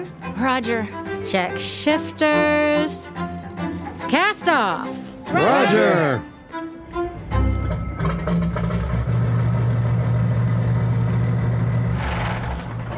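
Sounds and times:
speech: 0:00.0 - 0:03.4, 0:04.1 - 0:06.3
boat port engine cranking, catching and idling roughly: 0:06.8 - 0:12.9.

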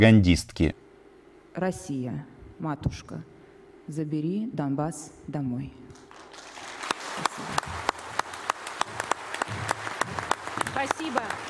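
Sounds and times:
speech: 0:00.0 - 0:00.8, 0:01.6 - 0:03.3, 0:03.9 - 0:06.0, 0:10.8 - 0:11.4
audience applause: 0:06.0 - 0:11.4.

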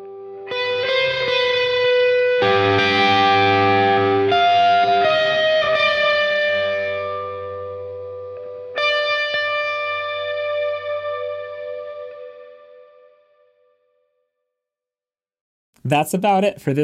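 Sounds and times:
heavily distorted electric guitar playing sustained chords: 0:00.0 - 0:13.4
speech: 0:15.9 - 0:16.8.

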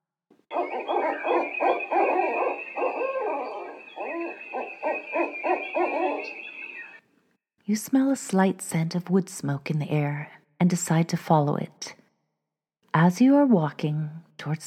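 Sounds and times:
owl hooting in ancient woods: 0:00.5 - 0:07.0
faint airy night forest ambience: 0:00.5 - 0:07.1
speech: 0:07.7 - 0:12.0, 0:13.0 - 0:14.6.

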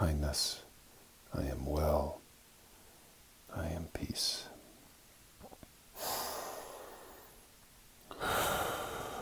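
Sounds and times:
speech: 0:00.0 - 0:00.6, 0:01.3 - 0:02.2, 0:03.5 - 0:04.5
slow deep breathing during a guided meditation: 0:05.9 - 0:07.5, 0:08.1 - 0:09.2.

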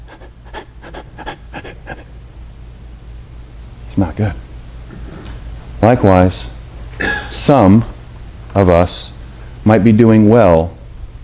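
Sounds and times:
person demonstrating labored breathing, panting: 0:00.0 - 0:02.1
quiet hum: 0:00.0 - 0:11.2
speech: 0:04.0 - 0:04.4, 0:05.8 - 0:06.5, 0:07.3 - 0:07.9, 0:08.5 - 0:10.8.

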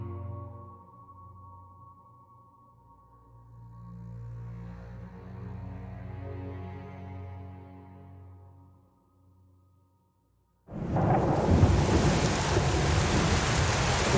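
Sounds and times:
loud rain beating against a bedroom window: 0:10.7 - 0:14.1
low rolling rumble of thunder on a stormy day: 0:10.7 - 0:14.1.

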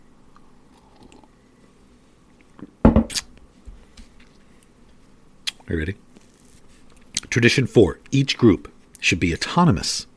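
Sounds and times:
person slurping coffee: 0:00.7 - 0:01.4
coffee mug knock: 0:02.9 - 0:03.1
speech: 0:05.7 - 0:06.0, 0:07.4 - 0:10.1.

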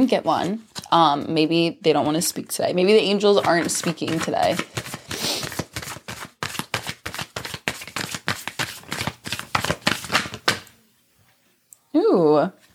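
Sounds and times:
speech: 0:00.0 - 0:05.3
tarot cards being shuffled and pulled from a deck: 0:03.4 - 0:10.8.

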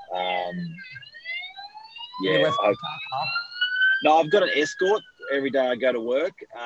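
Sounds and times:
ambulance siren wailing: 0:00.0 - 0:06.6
speech: 0:00.1 - 0:01.3, 0:02.2 - 0:06.6.

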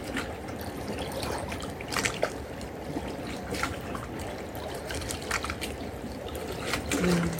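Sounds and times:
trickling water: 0:00.0 - 0:07.3.

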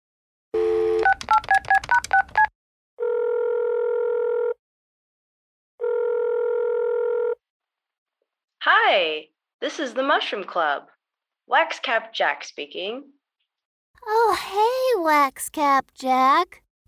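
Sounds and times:
steady telephone dial tone: 0:00.6 - 0:01.5, 0:02.1 - 0:04.6, 0:05.8 - 0:07.4
speech: 0:08.9 - 0:10.9, 0:11.5 - 0:13.2, 0:14.0 - 0:16.6.

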